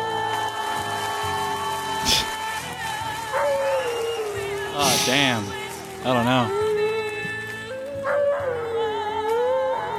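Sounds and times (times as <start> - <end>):
music: 0.0 - 9.9
dog howling along to a song: 3.3 - 4.4, 7.9 - 9.9
speech: 5.0 - 6.6.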